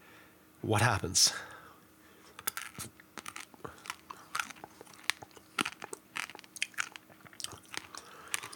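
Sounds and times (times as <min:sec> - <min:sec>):
speech: 0:00.6 - 0:01.6
chocolate-covered espresso bean being crunched and chewed: 0:02.3 - 0:08.5.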